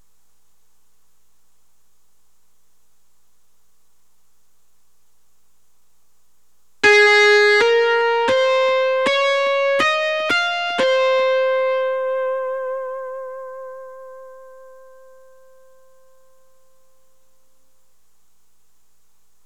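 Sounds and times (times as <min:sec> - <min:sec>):
lead guitar line: 0:06.8 - 0:15.9.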